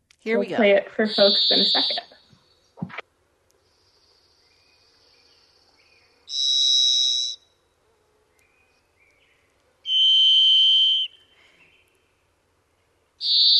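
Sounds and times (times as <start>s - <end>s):
speech: 0.2s - 2.1s
robin-sized orange and black thrush giving whistle-like calls: 1.1s - 2.2s, 6.3s - 7.4s, 9.8s - 11.4s, 13.2s - 13.5s.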